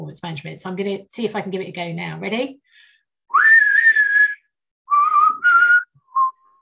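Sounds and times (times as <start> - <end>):
speech: 0.1 - 3.5
person whistling a film theme tune: 3.3 - 6.6.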